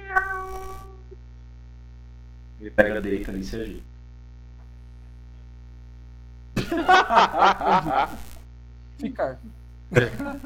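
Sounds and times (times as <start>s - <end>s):
cat meowing: 0.0s - 1.0s
steady low hum: 0.0s - 10.4s
speech: 2.6s - 3.9s, 6.8s - 8.3s, 9.0s - 10.4s
laughter: 6.6s - 8.3s, 9.9s - 10.4s.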